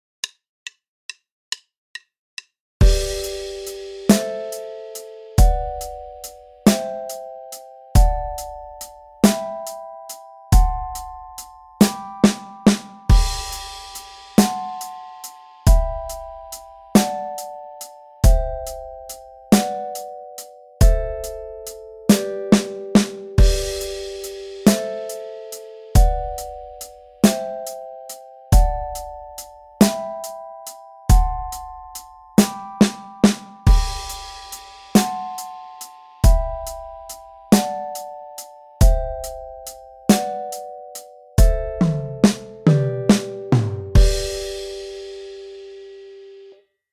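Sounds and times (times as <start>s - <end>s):
beginner harmony bass accompaniment: 2.8s - 7.2s, 8.0s - 9.6s, 10.6s - 15.0s, 15.7s - 17.6s, 18.2s - 19.9s, 20.8s - 27.7s, 28.5s - 30.4s, 31.1s - 35.6s, 36.2s - 38.0s, 38.8s - 40.4s, 41.4s - 45.8s.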